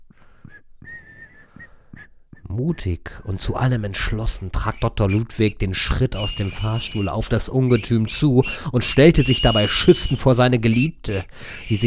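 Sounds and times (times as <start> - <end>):
person whistling through a tooth gap: 0.4 - 2.5, 4.6 - 11.8
speech: 2.6 - 11.8.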